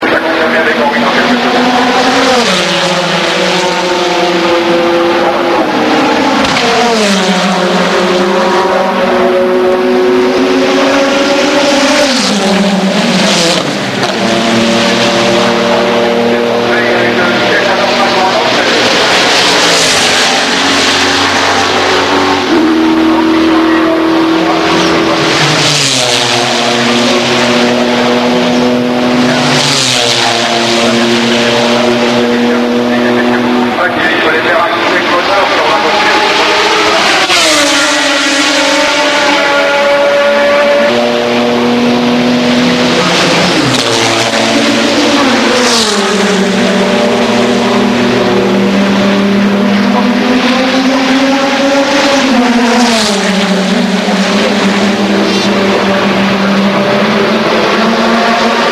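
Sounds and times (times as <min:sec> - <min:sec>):
BMW car pit stop: 0:00.0 - 0:58.6.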